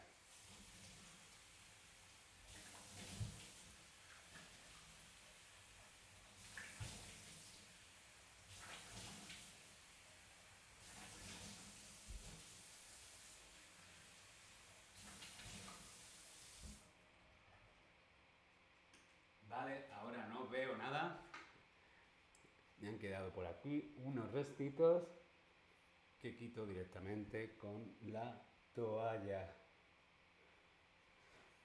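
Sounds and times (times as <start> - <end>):
tap water running: 0.0 - 16.9
speech: 19.5 - 21.3, 22.8 - 25.2, 26.2 - 29.6.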